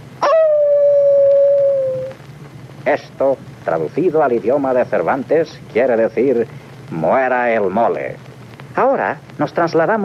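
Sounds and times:
sea lion howling: 0.2s - 2.2s
speech: 2.9s - 10.0s.

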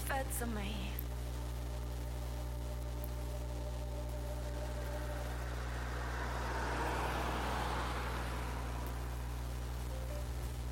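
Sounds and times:
speech: 0.2s - 1.0s
car engine rumble while driving: 1.2s - 10.6s
road noise in a car cabin: 1.2s - 10.6s
passing traffic whoosh: 3.9s - 10.6s.

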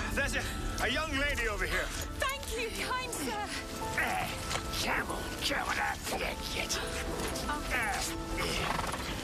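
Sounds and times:
speech: 0.2s - 9.1s
horse tangled in its reins whinnying: 8.4s - 9.2s.

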